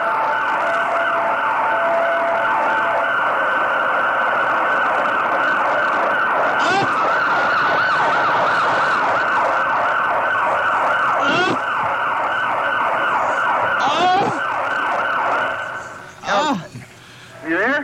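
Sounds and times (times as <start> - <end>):
police car sirens wailing: 0.0 - 17.5.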